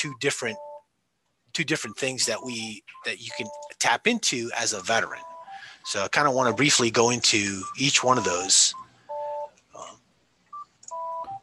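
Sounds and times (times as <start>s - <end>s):
speech: 0.0s - 0.7s, 1.6s - 8.9s
phone keypad-like dual tone beeps: 0.0s - 0.8s, 1.9s - 3.9s, 4.6s - 9.6s, 10.5s - 11.4s.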